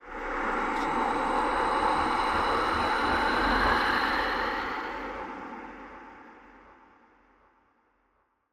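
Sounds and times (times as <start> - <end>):
spooky wind: 0.0 - 6.8.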